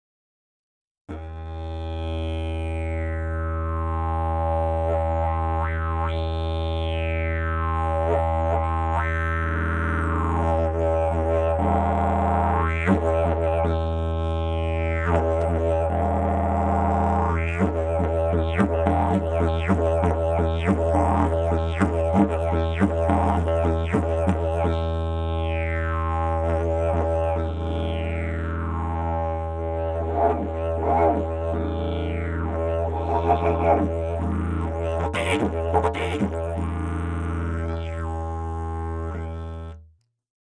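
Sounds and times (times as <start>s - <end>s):
didgeridoo: 1.1s - 39.8s.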